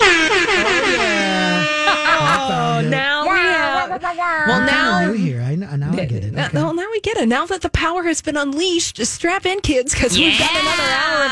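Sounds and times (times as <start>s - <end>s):
air horn sound effect blaring: 0.0s - 2.5s
laughter: 0.0s - 5.1s
speech: 5.7s - 11.2s.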